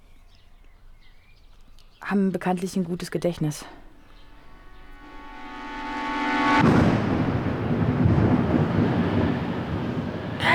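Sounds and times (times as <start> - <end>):
speech: 2.1 - 3.8
steady tonal hum: 3.7 - 9.8
thunder crash with rapid lightning: 4.8 - 10.4.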